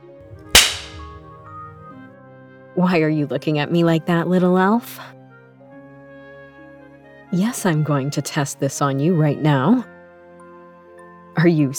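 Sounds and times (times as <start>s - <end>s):
candy cane crop whip crack: 0.5s - 1.3s
speech: 2.8s - 5.2s, 7.3s - 9.9s, 11.4s - 11.7s.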